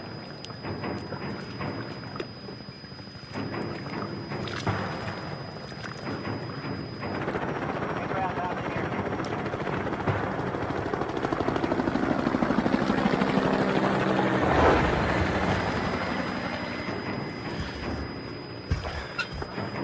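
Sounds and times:
helicopter rotor thumping: 0:00.0 - 0:19.8
brief voices: 0:07.7 - 0:09.6, 0:13.7 - 0:19.8.

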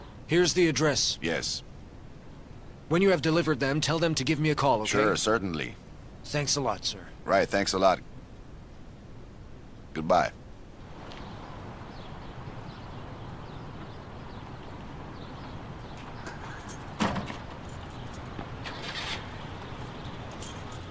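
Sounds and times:
steady low hum: 0:00.0 - 0:20.8
speech: 0:00.3 - 0:01.7, 0:02.9 - 0:08.1, 0:10.0 - 0:10.4
metal shop keys jingling as they are handed over: 0:16.3 - 0:20.8.

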